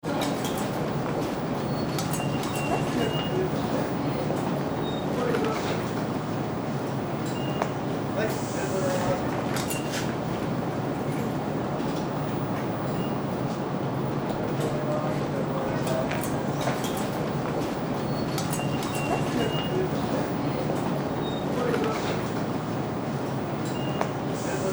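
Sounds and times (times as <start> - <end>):
station ticket gate: 0.0 - 24.7.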